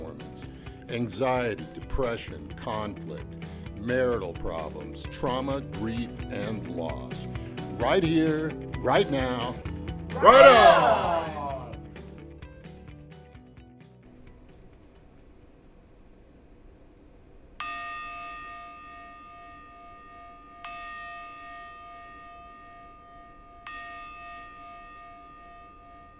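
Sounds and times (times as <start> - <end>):
speech: 0.9 - 11.3
laughter: 10.1 - 11.8
meditation bell struck: 14.1 - 26.1.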